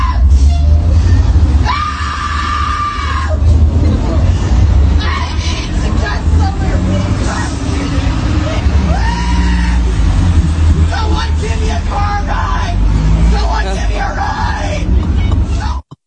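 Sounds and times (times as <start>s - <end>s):
steady low engine rumble: 0.0s - 15.8s
woman screaming in a public tantrum: 1.6s - 3.4s, 8.8s - 9.9s
agitated voices calling out faintly: 1.7s - 15.8s
crowd babble: 3.3s - 15.8s.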